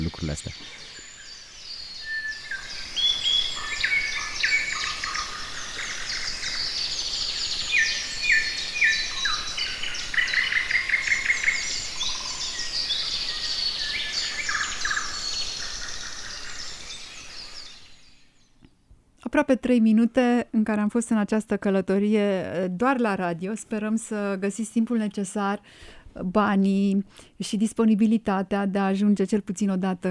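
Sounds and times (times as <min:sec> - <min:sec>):
many birds singing in riparian woodland: 0:00.0 - 0:18.9
speech: 0:00.1 - 0:01.0, 0:19.3 - 0:30.0.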